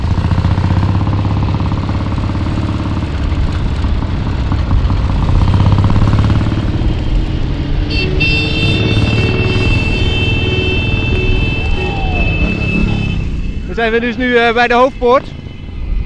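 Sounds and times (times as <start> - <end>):
heavy Triumph motorcycle engine rumbling: 0.0 - 16.0
speech: 13.8 - 15.4.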